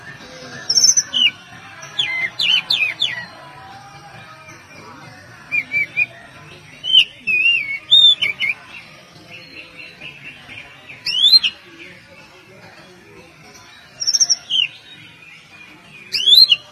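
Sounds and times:
Oriental magpie-robin whistles and warbled phrases: 0.0s - 3.4s, 5.4s - 11.7s, 13.9s - 15.1s, 16.0s - 16.6s.

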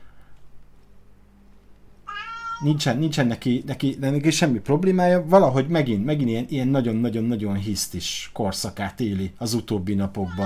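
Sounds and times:
low steady hum: 0.0s - 10.4s
cat meowing: 2.1s - 2.8s, 10.1s - 10.4s
speech: 2.6s - 10.4s.

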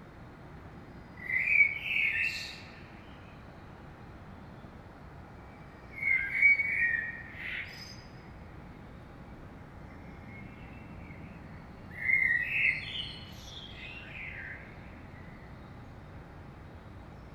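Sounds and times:
common blackbird song in the morning in Saint-Gilles Belgium: 1.2s - 3.4s, 6.0s - 8.2s, 10.2s - 16.0s.

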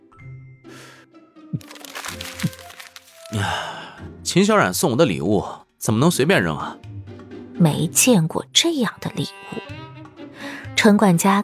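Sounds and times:
crumpled paper flyer crinkling as it is unfolded: 1.6s - 3.6s
speech: 3.3s - 6.8s, 7.6s - 9.8s, 10.8s - 11.4s.

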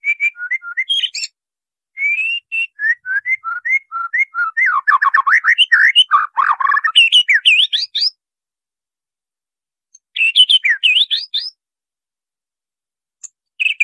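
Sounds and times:
White-rumped shama song with rising and falling whistles and chirps: 0.0s - 1.4s, 2.0s - 8.2s, 9.9s - 11.6s, 13.2s - 13.8s.

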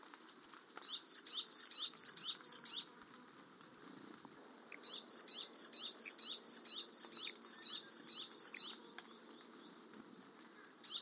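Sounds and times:
faint hiss: 0.0s - 11.0s
Japanese tit calling: 0.8s - 2.9s, 4.8s - 8.8s.

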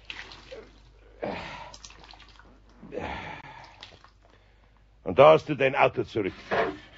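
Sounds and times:
water splashing from a soaked cloth rag wrung out by hand: 0.0s - 2.7s, 3.5s - 4.3s
water trickling drips from a wrung rag: 0.0s - 2.8s, 3.4s - 4.5s
speech: 5.1s - 6.7s.

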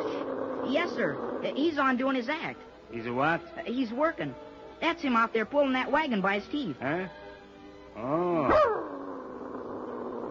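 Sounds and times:
dog growling in a sustained snarl: 0.0s - 1.9s, 8.0s - 10.3s
speech: 0.7s - 7.2s, 8.0s - 8.8s.

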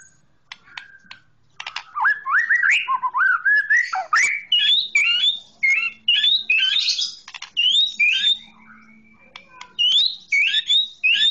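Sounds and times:
oriental magpie-robin song with whistled phrases and harsh notes: 0.0s - 11.2s
oriental magpie-robin clicks: 0.4s - 2.0s, 7.2s - 7.6s, 9.3s - 9.8s.

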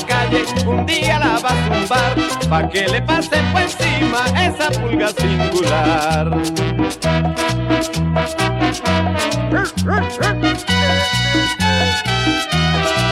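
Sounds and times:
cumbia-style song with bass and rhythm section: 0.0s - 13.0s
speech: 0.2s - 8.4s
dog yips and barks within a cumbia-style song: 9.6s - 11.8s.

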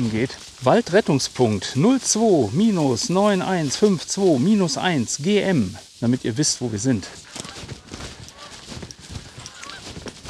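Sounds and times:
speech: 0.0s - 7.7s
person moving: 0.0s - 10.2s
rustling wind noise on a hillside: 0.0s - 10.2s
geese or cranes calling overhead: 2.5s - 5.5s, 7.3s - 10.0s.

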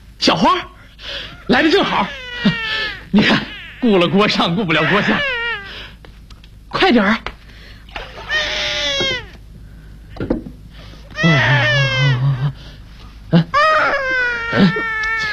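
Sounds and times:
speech: 0.2s - 5.4s, 6.7s - 7.3s
hungry baby crying: 0.8s - 6.0s, 8.1s - 9.4s, 11.1s - 12.6s, 13.4s - 15.3s.

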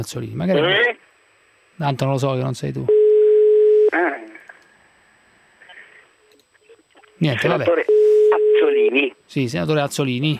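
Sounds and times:
speech: 0.0s - 1.0s, 1.8s - 3.0s, 7.2s - 10.3s
telephone ringing unanswered from the caller's side: 2.9s - 3.9s, 7.9s - 8.8s.

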